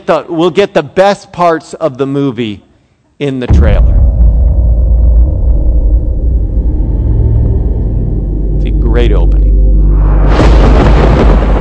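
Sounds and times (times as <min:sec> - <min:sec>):
speech: 0:00.0 - 0:03.9
deep loud rumble of thunder: 0:03.5 - 0:11.6.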